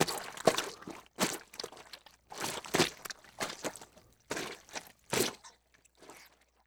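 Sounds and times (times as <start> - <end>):
footsteps in liquid mud: 0.0 - 6.6.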